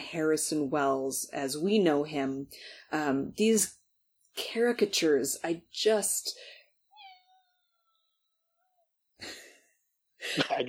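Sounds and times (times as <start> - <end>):
speech: 0.1 - 3.8, 4.4 - 6.6, 10.2 - 10.6
cat meowing softly: 7.0 - 8.0.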